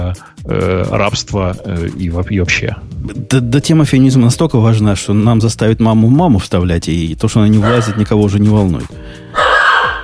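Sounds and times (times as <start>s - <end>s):
speech: 0.1s - 9.2s
dog barking: 7.6s - 8.2s, 9.4s - 10.0s.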